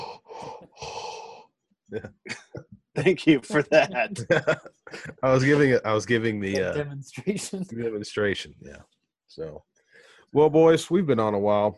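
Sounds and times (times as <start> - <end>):
heavy rough noisy breathing: 0.0 - 1.4
speech: 1.9 - 9.7, 10.3 - 11.7
laughter: 2.0 - 6.8.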